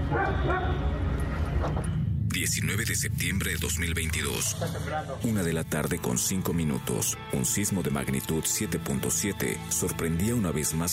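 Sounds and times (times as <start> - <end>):
rescue dog barking: 0.0 - 0.9
steady low rumbling background: 0.0 - 6.0
speech: 1.6 - 10.9.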